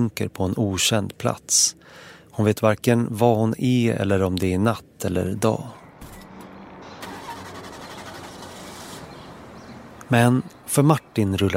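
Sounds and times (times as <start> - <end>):
speech: 0.0 - 5.8, 10.1 - 11.5
car engine starting for a morning drive: 5.8 - 10.7.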